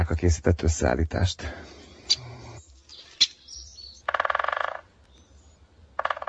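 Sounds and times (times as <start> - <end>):
speech: 0.0 - 2.2
sharp bird calls: 1.6 - 6.2
woodpecker drumming on a tree: 2.9 - 5.0, 5.9 - 6.2.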